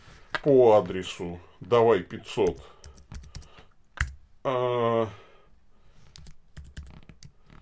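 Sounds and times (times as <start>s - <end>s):
speech: 0.4s - 2.8s, 4.4s - 5.2s
typing a message on a computer keyboard in a web chat: 2.4s - 4.2s, 6.2s - 7.4s.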